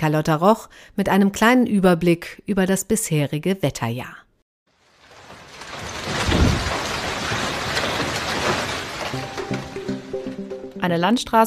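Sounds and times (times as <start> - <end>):
speech: 0.0 - 4.2, 10.8 - 11.4
large hailstones pounding on car bodies: 4.7 - 10.8.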